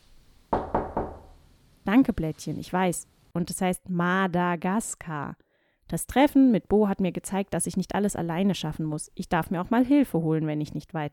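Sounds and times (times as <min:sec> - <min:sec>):
knocking on a door: 0:00.5 - 0:01.4
speech: 0:01.9 - 0:11.1.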